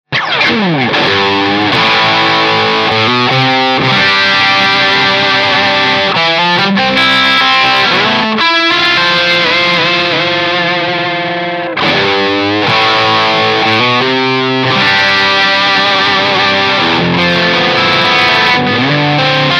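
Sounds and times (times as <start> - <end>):
modern distorted electric guitar playing rock rhythm: 0.1 - 19.5.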